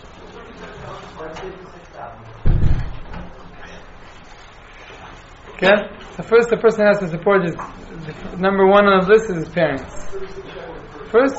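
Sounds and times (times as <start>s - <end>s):
murmur of people talking: 0.0s - 11.3s
door shutting with a thud: 2.4s - 3.4s
speech: 5.6s - 10.5s, 11.1s - 11.3s.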